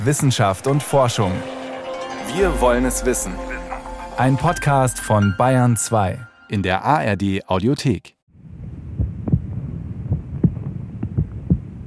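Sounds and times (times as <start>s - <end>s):
speech: 0.0s - 1.6s, 2.2s - 3.6s, 4.2s - 8.2s
low heartbeat of a mother: 8.8s - 11.8s.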